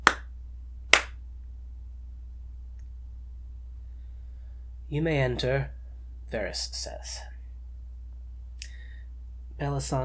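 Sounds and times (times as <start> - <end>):
woman clapping hands: 0.0 - 0.3, 0.9 - 1.2
quiet low hum: 0.0 - 9.6
speech: 4.9 - 7.3, 9.6 - 10.0.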